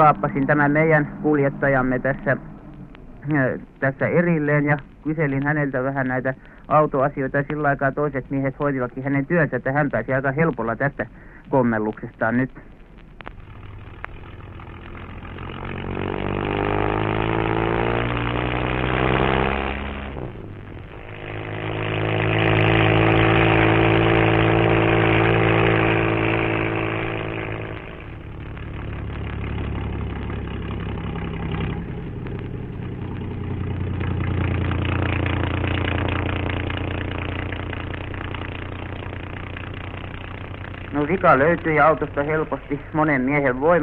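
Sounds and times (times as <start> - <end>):
speech: 0.0 - 2.5, 3.2 - 12.7, 41.2 - 43.8
heavy loaded trucks driving past in congested traffic: 0.0 - 4.6, 13.5 - 43.8.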